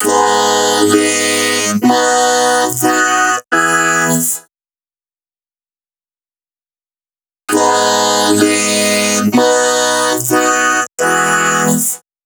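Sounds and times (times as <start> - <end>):
dry vocoder vocals chorus: 0.0 - 4.4, 7.5 - 12.0.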